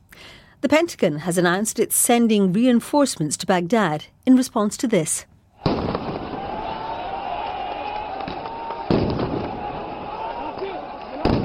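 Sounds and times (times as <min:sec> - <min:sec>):
speech: 0:00.6 - 0:05.3
troops firing tear gas launch bangs at an embassy compound: 0:05.6 - 0:06.7, 0:08.2 - 0:09.8, 0:11.2 - 0:11.4
crowd of protesters noise and voices: 0:06.3 - 0:11.4.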